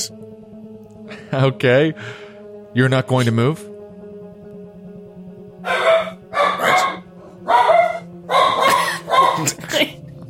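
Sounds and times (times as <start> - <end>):
speech: 1.3 - 2.2, 2.8 - 3.7
dog barking and yelping: 5.6 - 9.6.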